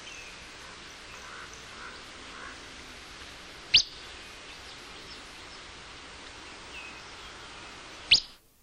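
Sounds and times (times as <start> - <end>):
soft background hiss: 0.0 - 8.6
Willow Flycatcher whit calls in the Verde Valley, central Arizona: 0.6 - 2.7, 8.0 - 8.4.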